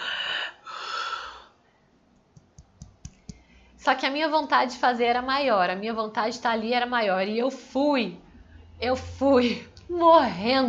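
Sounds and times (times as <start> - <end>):
voice imitating scuba regulator breathing: 0.0 - 1.6
speech: 3.8 - 8.2, 8.8 - 10.6.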